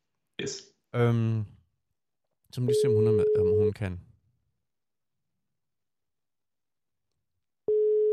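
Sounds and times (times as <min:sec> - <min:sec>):
speech: 0:00.4 - 0:01.6, 0:02.5 - 0:04.1
telephone ringing tone of an unanswered outgoing call: 0:02.7 - 0:03.6, 0:07.7 - 0:08.1.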